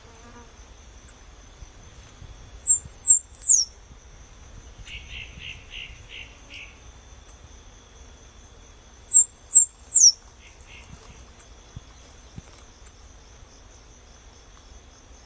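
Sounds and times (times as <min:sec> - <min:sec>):
faint constant hum: 0:00.0 - 0:15.2
half-collared sparrow singing thin sliding whistles and buzzy notes: 0:02.5 - 0:03.7, 0:09.0 - 0:10.1.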